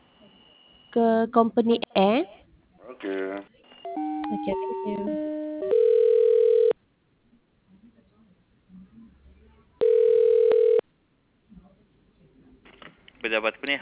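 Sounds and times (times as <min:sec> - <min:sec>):
speech: 0:00.9 - 0:03.6, 0:04.3 - 0:05.3, 0:13.2 - 0:13.8
telephone line connecting and ringing with long steady ringback tones: 0:03.8 - 0:06.8, 0:09.8 - 0:10.8.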